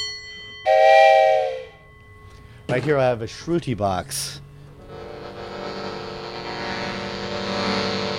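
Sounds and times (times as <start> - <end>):
train whistle blast with multi-tone chord: 0.7 - 1.8
speech: 2.7 - 4.4.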